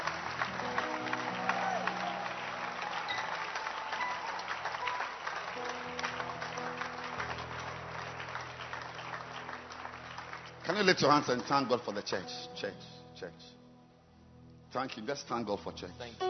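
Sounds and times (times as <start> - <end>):
audience clapping: 0.0 - 12.2
speech: 10.8 - 13.6, 14.7 - 16.2.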